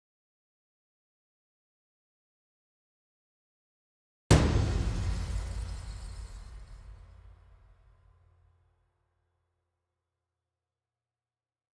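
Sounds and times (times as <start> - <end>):
percussion: 4.3 - 8.6.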